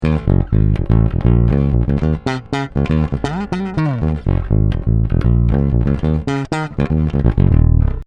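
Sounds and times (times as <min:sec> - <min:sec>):
bass guitar on passive neck pickup: 0:00.0 - 0:08.0.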